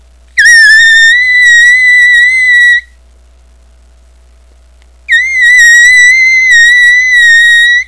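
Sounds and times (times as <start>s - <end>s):
high squeal of a turkey hunting call: 0.4s - 3.0s, 5.1s - 7.8s.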